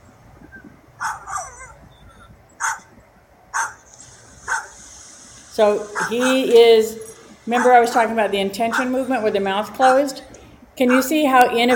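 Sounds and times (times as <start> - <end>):
dog giving short sharp barks and yips: 1.0 - 1.8, 2.6 - 2.9, 3.5 - 3.8, 4.4 - 4.8, 5.9 - 6.6, 7.5 - 8.0, 8.6 - 9.0, 10.8 - 11.7
speech: 5.6 - 11.7.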